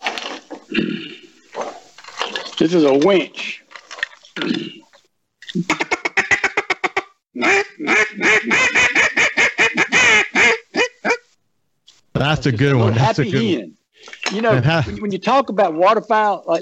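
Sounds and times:
speech: 2.6 - 3.4, 5.5 - 5.9, 12.2 - 13.7, 14.3 - 16.6
mallard duck call blown: 6.1 - 11.2.

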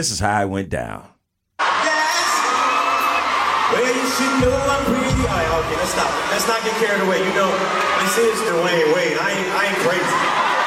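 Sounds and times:
speech: 0.0 - 1.1, 3.7 - 10.6
concert crowd cheering at a live performance in Paris: 1.6 - 10.6
laughter: 5.3 - 10.6.

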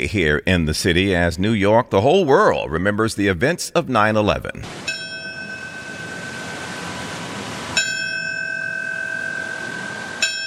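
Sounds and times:
speech: 0.0 - 5.0
large ceremonial bell tolling: 4.9 - 10.4.

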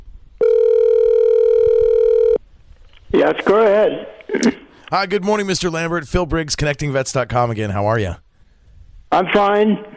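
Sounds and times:
steady electronic phone line ring tone: 0.4 - 2.4
speech: 3.1 - 8.2, 9.1 - 9.9.

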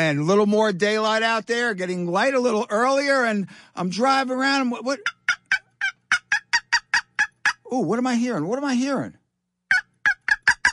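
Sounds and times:
speech: 0.0 - 5.4, 7.7 - 9.2
wild turkeys clucking and gobbling: 5.0 - 7.6, 9.7 - 10.7.

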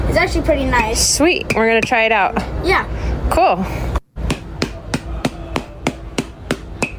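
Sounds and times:
speech: 0.2 - 3.9
massage hammer tapping on someone's back: 4.2 - 6.9.

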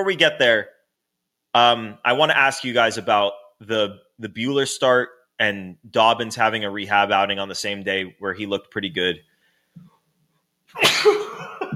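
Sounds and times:
speech: 0.0 - 0.8, 1.5 - 9.9, 10.7 - 11.6
loud sneeze: 10.7 - 11.7.

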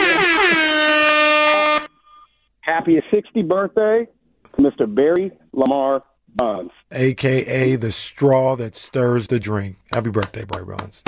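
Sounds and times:
air horns blaring: 0.0 - 2.0
speech: 2.8 - 11.0.

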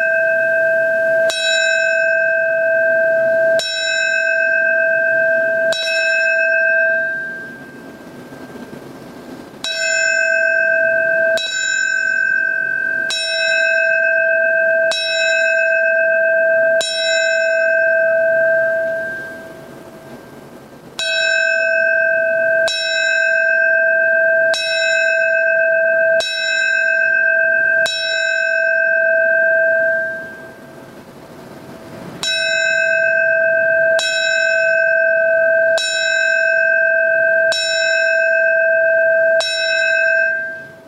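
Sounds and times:
large fire department bell ringing: 0.0 - 40.8.

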